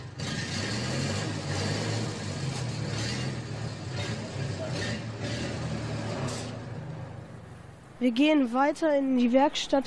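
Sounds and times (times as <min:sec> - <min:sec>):
clatter: 0:00.0 - 0:06.7
idling buses in a bus and tram depot: 0:00.0 - 0:08.7
speech: 0:08.0 - 0:09.8.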